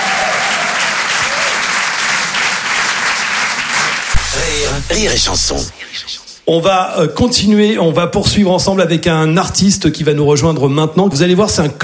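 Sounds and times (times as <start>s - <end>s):
audience applause at a live comedy and music show: 0.0s - 5.7s
speech: 4.9s - 11.8s.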